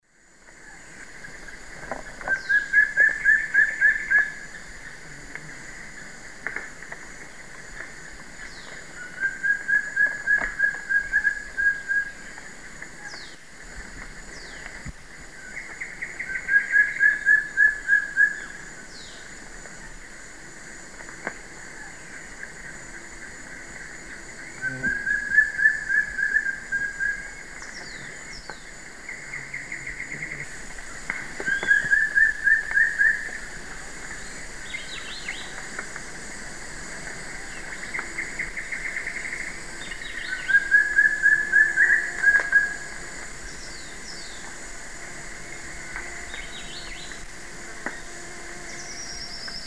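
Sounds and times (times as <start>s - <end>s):
Piprites chloris singing in South America eastern lowlands: 2.2s - 5.0s, 8.4s - 12.4s, 15.4s - 19.3s, 21.8s - 33.5s, 34.1s - 35.7s, 37.3s - 44.4s, 46.1s - 47.2s, 47.9s - 49.6s.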